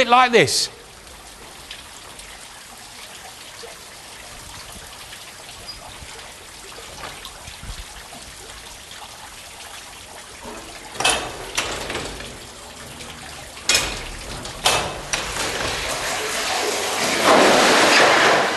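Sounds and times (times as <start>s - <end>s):
speech: 0.0s - 0.8s
mine machinery cog levers clunking: 10.4s - 18.4s.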